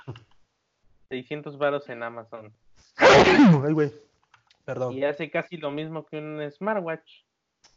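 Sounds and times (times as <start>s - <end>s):
speech: 1.1s - 4.1s, 4.7s - 7.3s
loud sneeze: 3.0s - 3.7s.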